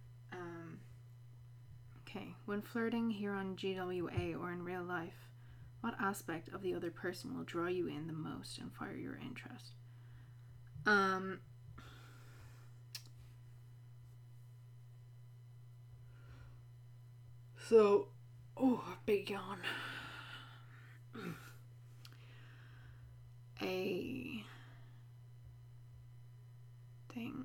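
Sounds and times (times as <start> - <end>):
steady low electrical hum: 0.0 - 27.4
speech: 2.1 - 9.8, 10.8 - 11.9, 17.7 - 19.9, 23.6 - 24.5, 27.2 - 27.4
woman coughing: 21.2 - 21.5.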